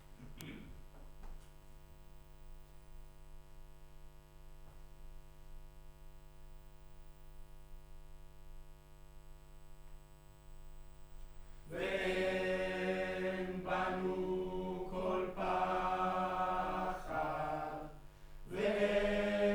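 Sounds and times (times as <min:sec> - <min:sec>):
choir: 0:11.7 - 0:19.5.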